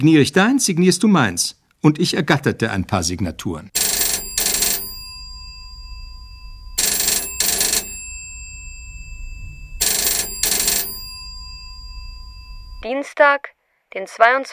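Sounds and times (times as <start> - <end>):
speech: 0.0 - 3.8, 13.2 - 14.5
telephone ringing in a classic double-burst pattern: 3.8 - 12.8
quiet low hum: 4.9 - 12.8.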